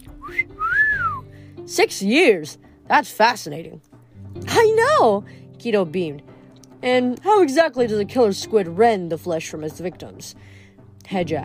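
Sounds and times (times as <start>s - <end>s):
person whistling: 0.1s - 1.3s
speech: 1.7s - 11.4s.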